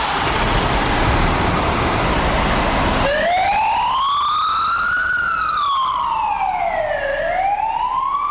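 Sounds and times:
fire engines rumbling with road noise: 0.0 - 8.2
fire engine wailing siren: 3.0 - 8.2.

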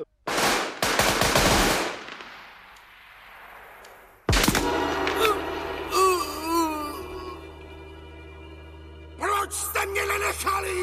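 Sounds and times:
machine-gun fire: 0.3 - 2.6
single sharp blast: 4.3 - 7.7
speech: 10.1 - 10.8.

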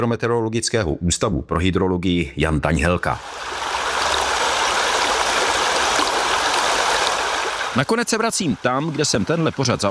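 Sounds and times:
speech: 0.0 - 3.6, 7.8 - 9.9
Sázava river water flowing past its bank: 3.2 - 9.9.

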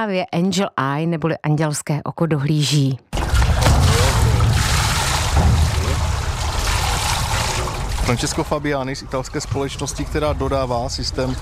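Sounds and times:
speech: 0.0 - 3.2, 8.1 - 11.4
water splashing and sloshing as mannequin is lowered into swimming pool: 3.1 - 11.4.

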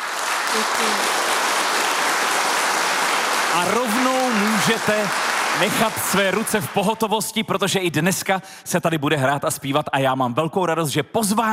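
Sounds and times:
audience applause: 0.0 - 7.3
speech: 0.6 - 1.5, 3.5 - 11.5.

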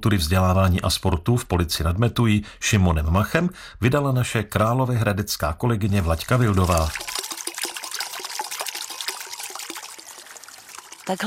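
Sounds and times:
speech: 0.0 - 7.1, 11.1 - 11.2
water babbling past small metal water wheel in Maternice woods near Hronov: 6.0 - 11.2.

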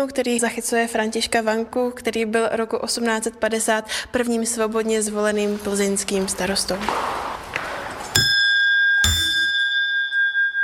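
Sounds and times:
speech: 0.0 - 7.3
hand bell rung to summon assembly: 8.2 - 10.6.

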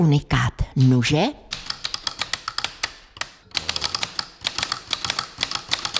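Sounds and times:
speech: 0.0 - 1.4
mechanical typewriter keys clacking: 1.5 - 5.9.

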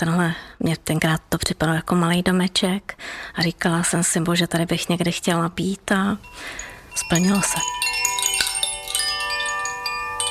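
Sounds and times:
speech: 0.0 - 8.0
meditation chime ringing with light strikes: 6.2 - 10.2.

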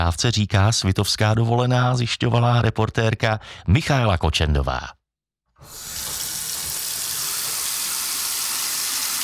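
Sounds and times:
speech: 0.0 - 5.0
water tap turned on: 5.6 - 9.2.

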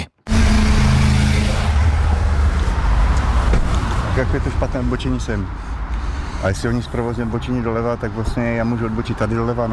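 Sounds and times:
car engine rumbling: 0.0 - 9.7
road noise of vehicles moving through a car park at a former bus station: 0.0 - 9.7
speech: 4.2 - 5.8, 6.4 - 9.7.

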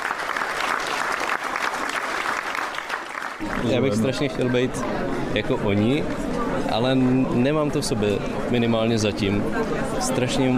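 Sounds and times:
large audience applauding in a sold-out hall: 0.0 - 4.4
speech: 3.4 - 10.5.

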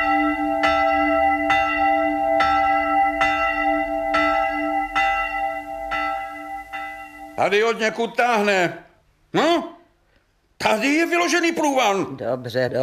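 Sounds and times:
church bell tolling for mass: 0.0 - 8.0
speech: 7.4 - 9.7, 10.6 - 12.8.

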